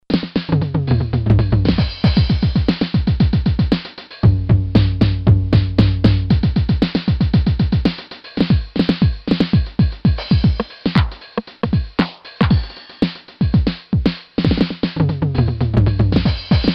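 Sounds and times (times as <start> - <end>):
drum machine: 0.0 - 16.7.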